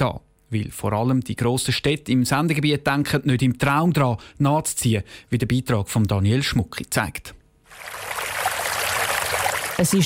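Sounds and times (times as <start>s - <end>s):
speech: 0.0s - 8.2s, 9.8s - 10.0s
water splashing in a fountain on a hot day: 7.7s - 10.0s.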